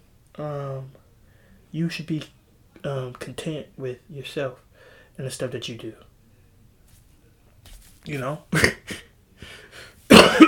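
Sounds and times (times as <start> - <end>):
speech: 0.4 - 1.0, 1.7 - 6.1, 8.0 - 9.0
person coughing: 8.5 - 9.1, 10.1 - 10.4.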